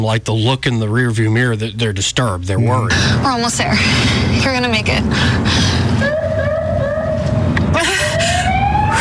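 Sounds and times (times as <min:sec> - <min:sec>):
speech: 0:00.0 - 0:06.8
loud continuous road rumble: 0:00.0 - 0:08.9
police car siren wailing: 0:05.9 - 0:08.9.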